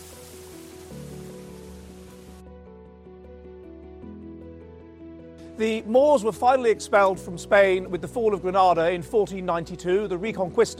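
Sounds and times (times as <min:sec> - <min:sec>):
water rushing and splashing: 0:00.0 - 0:02.4
speech: 0:05.6 - 0:10.7.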